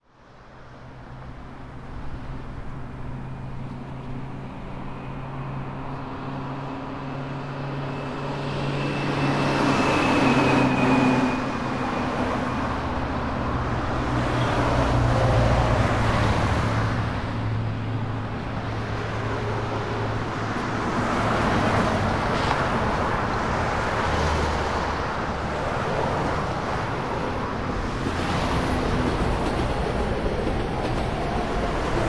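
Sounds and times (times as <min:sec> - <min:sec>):
traffic: 0:00.0 - 0:32.0.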